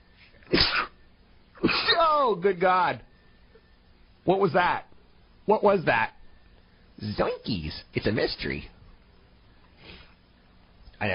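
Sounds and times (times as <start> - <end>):
sneeze: 0.4 - 1.0, 1.6 - 2.2
speech: 2.3 - 3.1, 4.2 - 4.9, 5.5 - 6.2, 7.0 - 8.8.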